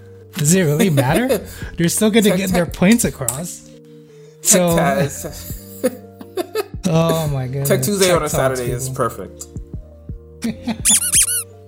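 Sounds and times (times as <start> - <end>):
speech: 0.4 - 3.7, 4.5 - 6.0, 6.9 - 9.7, 10.4 - 11.1
duck squeak sound effect of rubber-toy squeaks: 10.8 - 11.5.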